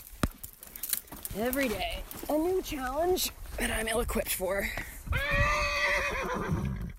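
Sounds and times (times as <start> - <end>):
speech: 1.3 - 6.7
mare whinnying refusing to cross a creek: 5.1 - 6.9.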